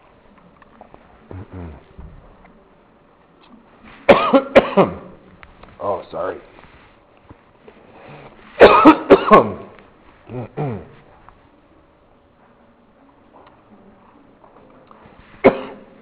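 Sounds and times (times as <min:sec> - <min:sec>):
throat clearing: 0:01.3 - 0:01.9, 0:08.2 - 0:11.1, 0:15.4 - 0:15.9
harsh coughing: 0:04.1 - 0:05.1, 0:08.6 - 0:09.7, 0:10.3 - 0:11.0, 0:15.4 - 0:15.9
speech: 0:04.3 - 0:05.0, 0:09.3 - 0:09.6.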